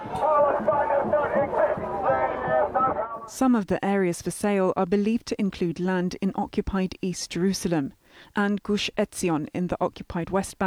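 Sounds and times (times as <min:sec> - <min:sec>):
large crowd of counter-protesters shouting and chanting: 0:00.0 - 0:03.3
speech: 0:03.3 - 0:10.6.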